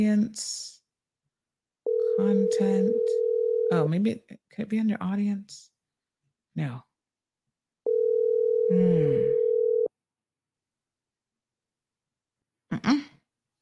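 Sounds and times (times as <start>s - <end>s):
speech: 0.0s - 0.7s, 2.2s - 5.7s, 6.6s - 6.9s, 8.7s - 9.4s, 12.8s - 13.1s
electronic phone ringing tone of an unanswered call: 1.9s - 3.9s, 7.9s - 9.9s
short vocal noise: 8.7s - 9.4s.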